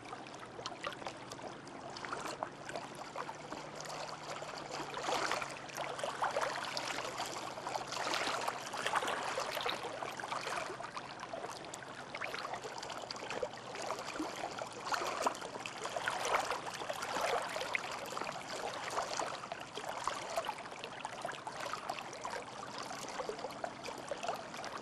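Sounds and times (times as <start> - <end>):
water at a dock: 0.0 - 24.8.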